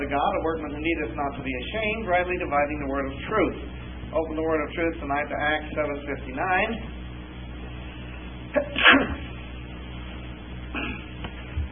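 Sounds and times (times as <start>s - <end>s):
speech: 0.1s - 7.0s
person sneezing: 8.5s - 9.3s, 10.7s - 11.2s.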